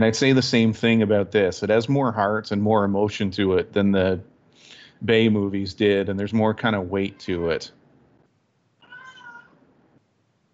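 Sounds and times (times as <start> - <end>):
speech: 0.0 - 4.3, 5.0 - 7.8
faint hiss: 0.0 - 10.5
cat meowing: 8.8 - 9.5.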